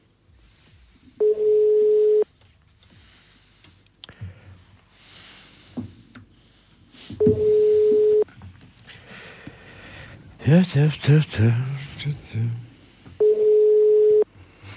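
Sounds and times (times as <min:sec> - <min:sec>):
unanswered telephone ringing tone over the line: 0:01.2 - 0:02.2, 0:07.2 - 0:08.2, 0:13.2 - 0:14.3
speech: 0:07.2 - 0:07.5, 0:10.5 - 0:12.6.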